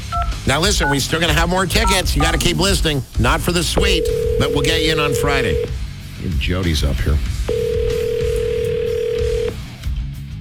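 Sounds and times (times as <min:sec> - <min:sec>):
speech: 0:00.4 - 0:07.6
telephone ringing tone of an outgoing call: 0:03.8 - 0:05.7, 0:07.5 - 0:09.6.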